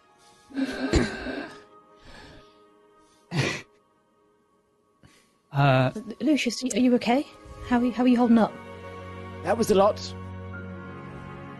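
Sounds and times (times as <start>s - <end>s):
person breathing heavily after exertion: 0.2s - 3.6s
speech: 5.6s - 8.6s, 9.4s - 10.2s.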